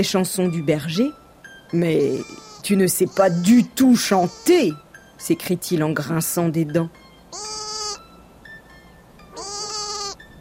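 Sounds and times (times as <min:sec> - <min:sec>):
speech: 0:00.0 - 0:07.7
lamb bleating loudly: 0:02.2 - 0:04.6, 0:07.3 - 0:08.0, 0:09.4 - 0:10.2.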